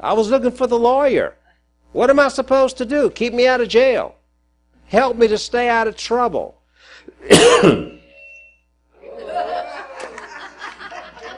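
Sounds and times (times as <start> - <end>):
speech: 0.0 - 4.2, 4.9 - 8.0
loud harsh throaty cough: 7.1 - 8.0
laughter: 9.0 - 11.3.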